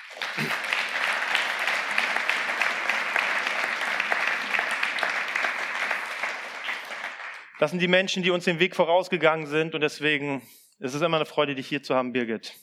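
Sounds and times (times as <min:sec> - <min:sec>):
room full of people clapping: 0:00.0 - 0:08.0
speech: 0:07.6 - 0:12.6.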